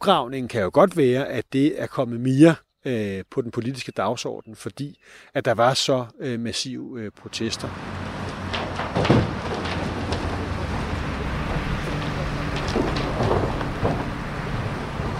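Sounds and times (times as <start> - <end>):
speech: 0.0 - 8.0, 9.0 - 9.3
excavator engine rumble outdoors: 7.2 - 15.1
loads of dug-up mink dropped into an empty truck bed: 7.7 - 15.1.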